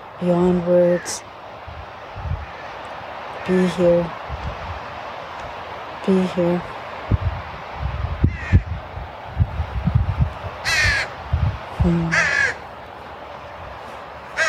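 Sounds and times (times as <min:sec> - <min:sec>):
speech: 0:00.2 - 0:01.3, 0:03.4 - 0:04.2, 0:06.0 - 0:06.8, 0:11.9 - 0:12.2
crow cawing outdoors: 0:02.4 - 0:02.9, 0:08.3 - 0:08.7, 0:10.6 - 0:11.2, 0:12.1 - 0:12.7
low rumbling: 0:04.1 - 0:14.2.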